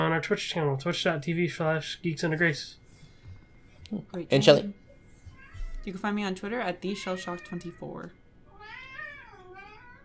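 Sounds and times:
speech: 0.2s - 2.8s, 3.9s - 4.8s, 5.8s - 8.2s
cat meowing: 5.3s - 5.9s, 6.9s - 10.0s.

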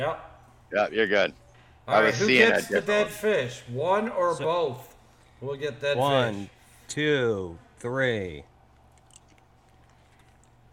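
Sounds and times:
speech: 0.0s - 8.5s
chewing a jelly bean with wet sticky mouth clicks: 8.7s - 10.7s.

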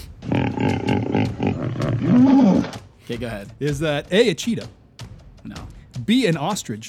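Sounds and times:
hippopotamus grunting roar: 0.2s - 2.8s
speech: 3.1s - 4.8s, 5.4s - 6.8s.

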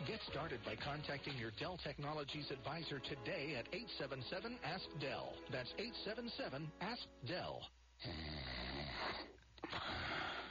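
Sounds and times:
speech: 0.1s - 10.3s
man snoring: 8.0s - 10.4s.

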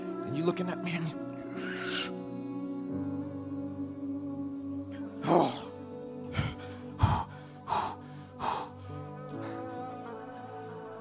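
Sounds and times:
breathy background: 0.0s - 11.0s
speech: 0.4s - 2.2s
person sharply drawing in breath to suck in the belly: 6.3s - 9.8s.

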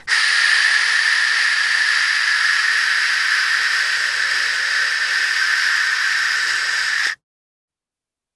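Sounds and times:
white noise hiss: 0.0s - 7.2s.

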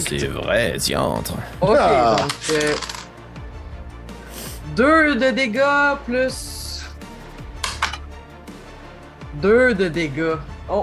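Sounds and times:
speech: 0.1s - 3.0s, 4.8s - 6.6s, 9.4s - 10.8s
dice including a D4 and a D6 clattering across a tabletop: 2.1s - 3.1s.

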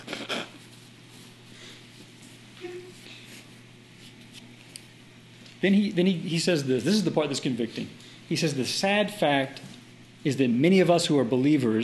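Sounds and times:
person blowing nose: 0.0s - 0.6s
sniffs: 0.0s - 0.6s
low steady hum: 0.0s - 11.8s
speech: 5.6s - 11.8s.

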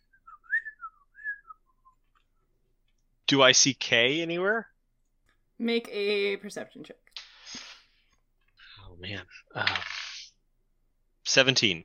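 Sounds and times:
person whistling a melody: 0.0s - 2.0s
speech: 3.3s - 4.7s, 5.6s - 7.0s, 9.0s - 10.0s, 11.4s - 11.8s.

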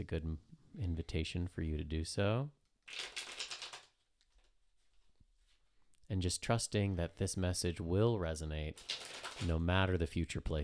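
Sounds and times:
speech: 0.0s - 3.2s, 6.1s - 10.6s
tarot cards being shuffled: 2.9s - 4.5s, 8.8s - 9.6s.

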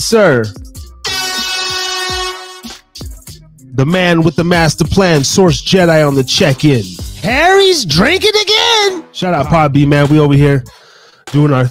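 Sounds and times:
speech: 0.0s - 0.7s, 3.8s - 11.6s
air horn sound effect blasts: 1.0s - 2.9s.

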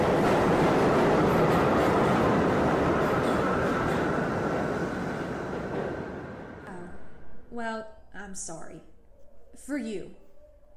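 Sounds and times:
train rumbling along the rails: 0.0s - 7.4s
speech: 7.6s - 8.9s, 9.5s - 10.2s.

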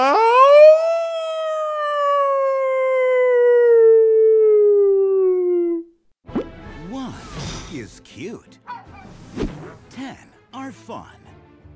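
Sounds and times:
dog howling: 0.0s - 5.9s, 8.7s - 9.2s
dog barking: 8.7s - 9.8s.

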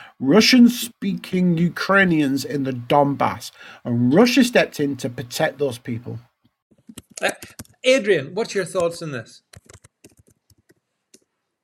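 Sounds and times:
speech: 0.2s - 6.3s, 6.9s - 9.7s
typing on a computer keyboard: 9.5s - 10.8s.

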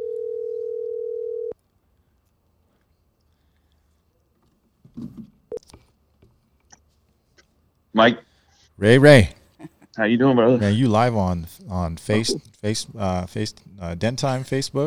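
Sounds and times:
phone line ringing tone during an outgoing call from a shop: 0.0s - 1.6s
speech: 8.0s - 9.4s, 10.0s - 14.8s.

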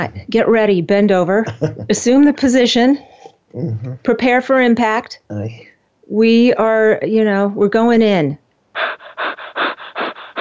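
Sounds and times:
speech: 0.0s - 9.4s
rapid heavy panting breaths: 8.8s - 10.3s.

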